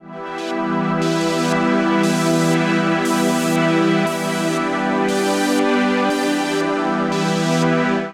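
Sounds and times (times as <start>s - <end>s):
synth pad music loop in E minor: 0.3s - 7.6s.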